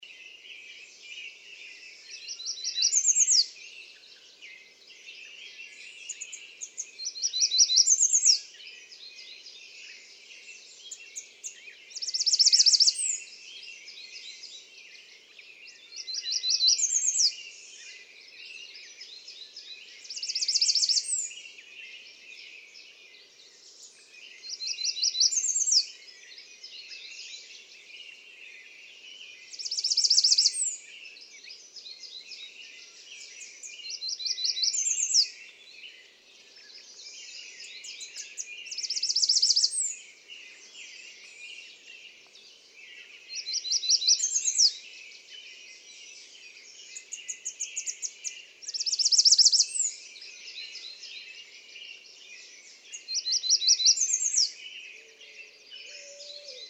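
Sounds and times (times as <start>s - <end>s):
American redstart: 0.0s - 56.6s.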